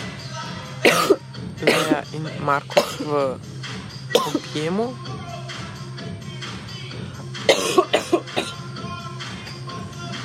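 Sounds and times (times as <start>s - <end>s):
person coughing: 0.8s - 2.1s, 2.7s - 3.2s, 4.2s - 4.6s, 7.5s - 8.6s
speech: 1.9s - 3.6s, 4.2s - 5.2s.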